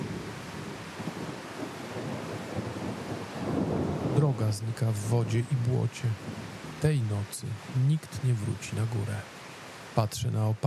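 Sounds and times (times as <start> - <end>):
heavy rain pouring over a valley at night: 0.0 - 10.6
speech: 4.3 - 9.4, 10.0 - 10.6.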